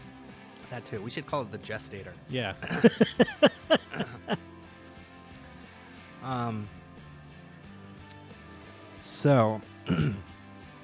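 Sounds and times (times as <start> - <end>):
speech: 0.7 - 4.5, 6.2 - 6.8, 9.2 - 10.3
laughter: 2.6 - 4.5
person clearing throat: 9.9 - 10.3.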